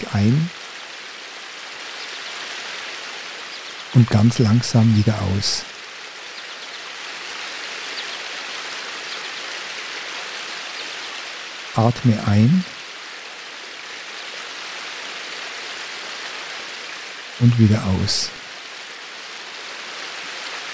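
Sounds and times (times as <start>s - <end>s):
babbling brook flowing: 0.0s - 20.7s
speech: 0.1s - 0.6s, 3.9s - 5.7s, 11.8s - 12.8s, 17.4s - 18.4s.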